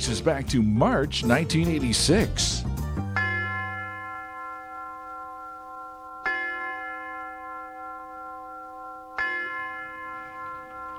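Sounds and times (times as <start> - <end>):
speech: 0.0 - 2.7
university tower bell chimes ringing: 3.1 - 10.9.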